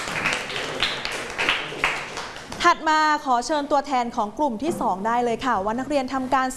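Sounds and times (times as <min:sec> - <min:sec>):
students applauding in a classroom: 0:00.0 - 0:02.6
speech: 0:02.6 - 0:06.5.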